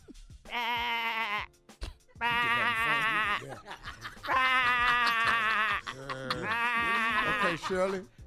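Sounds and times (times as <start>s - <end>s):
speech: 0.5s - 1.0s, 7.5s - 8.2s
person imitating a sheep bleating: 0.5s - 1.6s, 2.2s - 3.5s, 4.3s - 7.7s
laughter: 2.2s - 8.1s.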